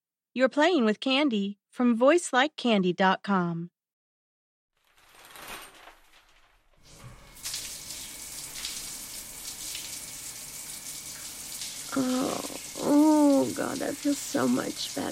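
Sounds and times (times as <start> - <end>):
speech: 0.4 - 3.8, 11.9 - 15.1
shower water running: 4.9 - 15.1.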